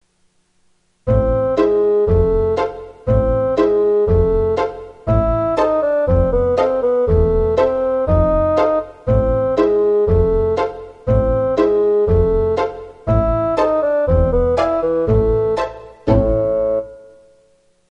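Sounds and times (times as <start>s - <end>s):
pizzicato and bassoon opening: 1.1s - 17.2s.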